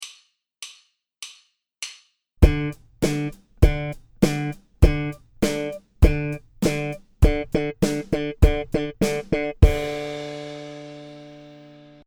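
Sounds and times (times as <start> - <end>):
bass string pull: 2.4 - 10.0.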